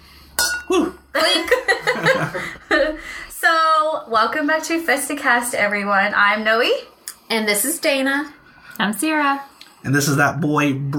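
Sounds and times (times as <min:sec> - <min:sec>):
glasses clinking in a toast: 0:00.4 - 0:00.9
people laughing: 0:00.7 - 0:03.0
people chatting: 0:00.7 - 0:10.9
speech: 0:04.1 - 0:10.9.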